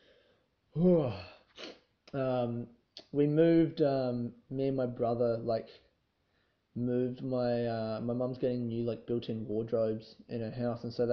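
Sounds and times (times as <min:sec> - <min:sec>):
speech: 0:00.8 - 0:01.3, 0:02.1 - 0:05.8, 0:06.8 - 0:11.1
person yawning: 0:00.8 - 0:01.7.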